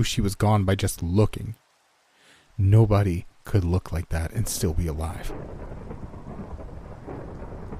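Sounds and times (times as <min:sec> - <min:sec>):
speech: 0:00.0 - 0:01.6, 0:02.6 - 0:05.7
steady dense rainfall: 0:00.0 - 0:07.7
deep continuous rumble of thunder: 0:04.4 - 0:07.7.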